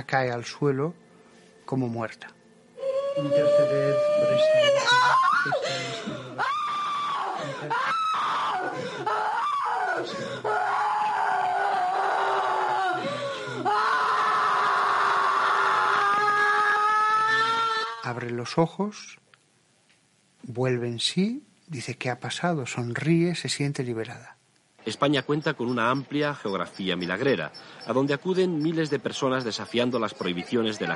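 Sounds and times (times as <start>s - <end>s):
speech: 0.0s - 1.0s, 1.7s - 2.4s, 3.2s - 6.5s, 7.5s - 9.2s, 10.0s - 10.8s, 18.1s - 19.2s, 20.5s - 30.9s
tremendous piercing scream with long wailing cries: 2.8s - 5.7s, 6.4s - 18.1s.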